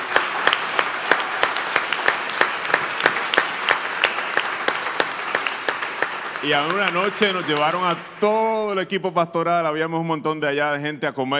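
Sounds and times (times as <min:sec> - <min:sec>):
sharp loud claps: 0:00.0 - 0:08.8
crowd applauding for a church: 0:00.0 - 0:09.0
speech: 0:06.4 - 0:11.3.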